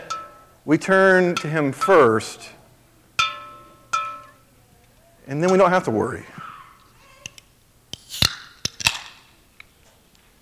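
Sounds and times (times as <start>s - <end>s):
speech: 0.7s - 2.6s, 5.3s - 6.4s
small metallic clicks and taps of a soda can: 6.8s - 10.4s
soda can popping open: 6.8s - 10.4s.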